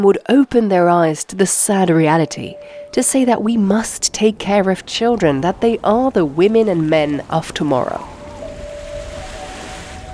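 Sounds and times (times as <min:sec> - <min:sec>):
speech: 0:00.0 - 0:08.2
gusty wind rumble: 0:01.3 - 0:10.1
faint sustained tonal hum: 0:01.7 - 0:10.1
sea waves with broad washing surf roar: 0:01.8 - 0:10.1.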